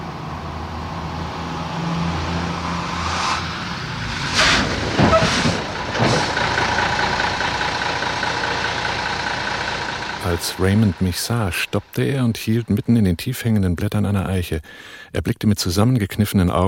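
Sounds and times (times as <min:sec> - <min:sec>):
broadband road noise: 0:00.0 - 0:13.3
truck engine rumbling as the truck sways around a bend: 0:00.0 - 0:14.8
speech: 0:10.4 - 0:16.6.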